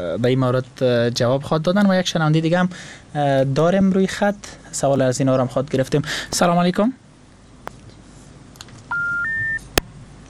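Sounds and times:
speech: 0.1s - 7.0s
telephone line tones as a phone-in caller's call drops: 8.9s - 9.8s.

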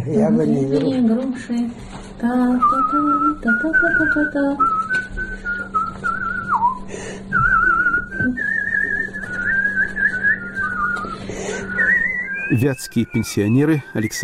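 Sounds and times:
speech: 0.0s - 5.0s, 12.5s - 14.2s
steady low hum: 0.0s - 14.2s
person whistling a lively melody: 2.5s - 14.2s
breaths: 6.8s - 7.4s, 11.2s - 11.8s.

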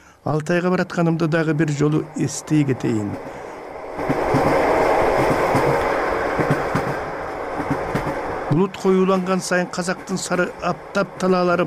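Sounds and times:
train running along railway tracks: 0.0s - 11.6s
speech: 0.2s - 3.4s, 8.5s - 11.6s
train wheels clacking over rails: 3.0s - 11.6s.

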